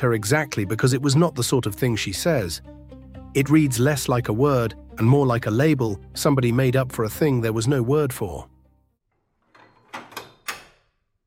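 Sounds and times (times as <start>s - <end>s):
speech: 0.0s - 8.5s
metal door bolt sliding: 9.2s - 11.0s.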